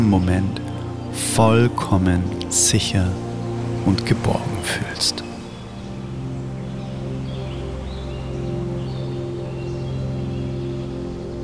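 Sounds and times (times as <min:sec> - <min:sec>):
speech: 0:00.0 - 0:05.3
steady low wash of waves: 0:00.0 - 0:10.2
birds chirping: 0:00.0 - 0:11.4.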